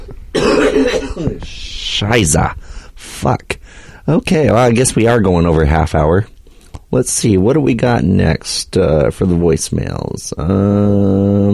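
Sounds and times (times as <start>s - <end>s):
harsh raspy coughing: 0.3s - 1.5s
speech: 0.8s - 6.3s, 6.9s - 11.5s.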